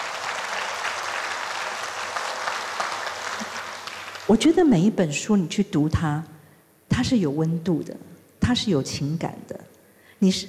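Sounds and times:
audience applause at a talk on end-of-life care: 0.0 - 4.4
speech: 4.3 - 6.3, 7.0 - 9.6, 10.2 - 10.4.

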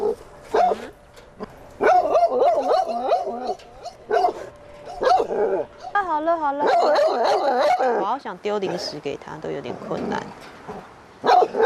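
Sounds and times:
dog giving high whiny barks and yelps: 0.0 - 1.0, 1.8 - 9.0, 10.7 - 11.6
speech: 6.4 - 6.8, 8.2 - 11.6.

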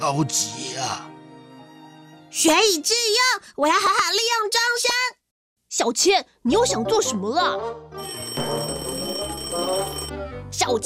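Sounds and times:
speech: 0.0 - 1.1, 2.3 - 8.2, 10.5 - 10.8
alarm clock ringing: 8.0 - 10.1.

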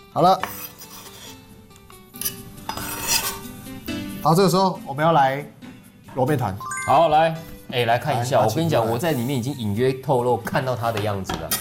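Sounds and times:
speech: 0.2 - 0.7, 4.2 - 11.5
knife cutting cucumber on a cutting board: 2.7 - 3.4.

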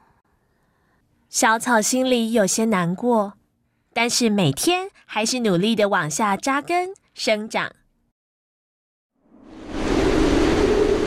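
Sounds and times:
speech: 1.3 - 3.4, 4.0 - 7.8
howling typhoon wind: 9.2 - 11.0.

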